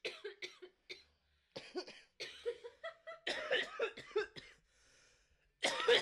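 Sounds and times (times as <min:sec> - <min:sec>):
harsh raspy coughing after smoking weed from a bowl: 0:00.0 - 0:02.6, 0:03.2 - 0:04.7, 0:05.6 - 0:06.0.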